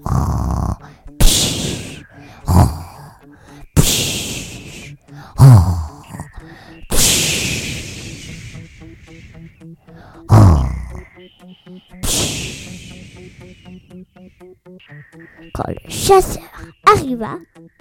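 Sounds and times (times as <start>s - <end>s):
voice imitating a wolf snoring: 0.0s - 8.8s, 10.1s - 11.1s
speech: 16.1s - 16.5s, 17.1s - 17.5s.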